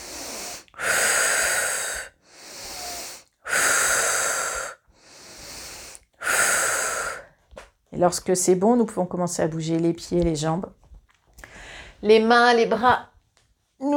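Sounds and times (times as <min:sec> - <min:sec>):
deep vigorous breaths in and out during a sophrology session: 0:00.0 - 0:07.5, 0:11.4 - 0:12.0
speech: 0:08.0 - 0:10.8, 0:12.0 - 0:13.1.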